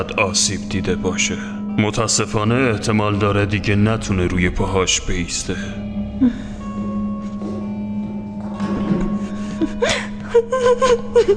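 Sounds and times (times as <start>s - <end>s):
speech: 0.0s - 6.5s, 10.6s - 11.3s
steady low hum: 0.0s - 11.3s
person crying softly with gasping breaths and whimpering sobs: 6.2s - 6.6s, 9.5s - 11.3s.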